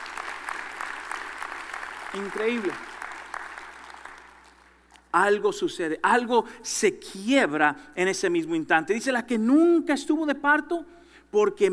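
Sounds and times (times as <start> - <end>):
crowd applauding: 0.0 - 4.7
speech: 2.1 - 3.0, 5.2 - 11.7.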